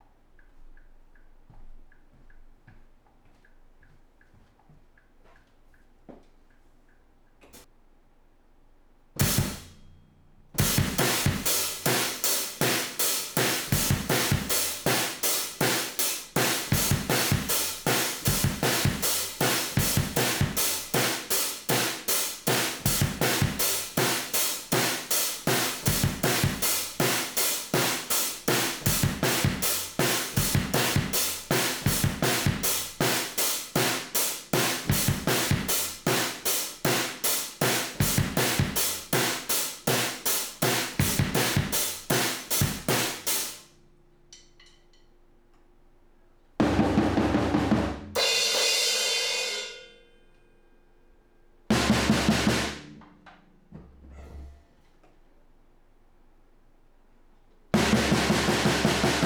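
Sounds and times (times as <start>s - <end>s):
drums through a room compressor: 9.1s - 43.7s, 46.6s - 50.0s, 51.7s - 54.7s, 57.7s - 59.2s.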